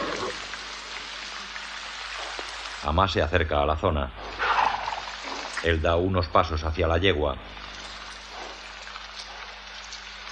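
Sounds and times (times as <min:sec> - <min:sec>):
steady rain pouring: 0:00.0 - 0:03.5, 0:04.3 - 0:06.7, 0:07.4 - 0:10.3
speech: 0:02.8 - 0:04.4, 0:05.6 - 0:07.6.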